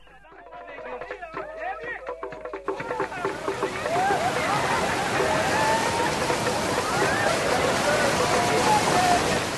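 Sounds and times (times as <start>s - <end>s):
laughter: 0.5s - 9.4s
roaring waterfall: 2.6s - 9.5s.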